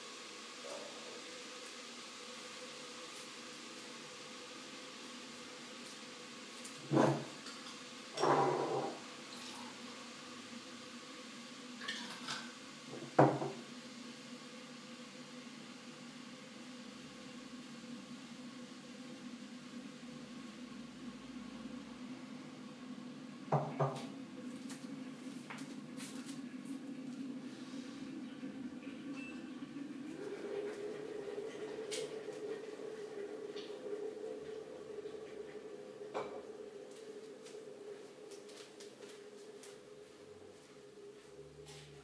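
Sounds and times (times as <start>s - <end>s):
running water during dishwashing: 0.0s - 13.7s, 23.4s - 41.2s
steady hum: 0.0s - 42.0s.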